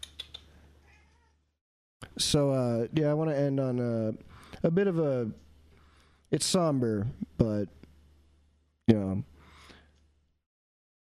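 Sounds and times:
cat meowing: 0.8s - 1.4s
speech: 2.2s - 5.4s, 6.3s - 7.8s, 8.9s - 9.3s.

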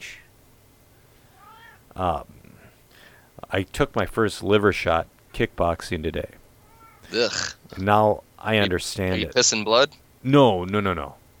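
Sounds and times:
cat meowing for attention: 1.3s - 1.9s, 6.6s - 7.6s
speech: 2.0s - 2.4s, 3.5s - 6.4s, 7.1s - 11.2s.

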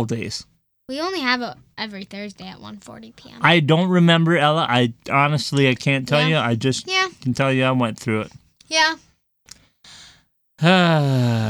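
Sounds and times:
speech: 0.0s - 9.1s, 10.6s - 11.4s
person yawning: 10.6s - 11.4s.

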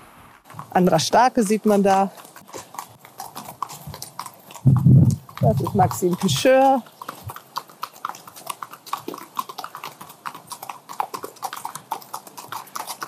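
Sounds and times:
horses' hooves clip-clopping walking past: 0.4s - 13.0s
speech: 0.8s - 2.2s, 5.5s - 7.0s.

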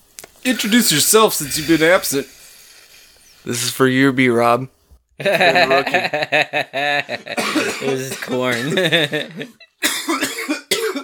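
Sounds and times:
speech: 0.4s - 2.4s, 3.4s - 9.6s
laughter: 5.2s - 9.7s
person coughing forcefully: 7.3s - 11.0s.

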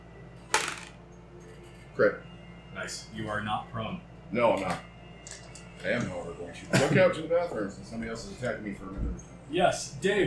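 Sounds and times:
dice rolling on a hard table in a tabletop role-playing game: 0.5s - 1.0s
speech: 2.0s - 4.9s, 5.8s - 10.2s.

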